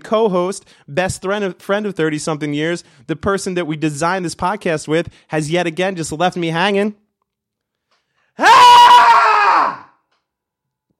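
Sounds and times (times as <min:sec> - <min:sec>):
speech: 0:00.1 - 0:07.0, 0:08.4 - 0:08.8
man screaming in frustration: 0:08.4 - 0:09.9.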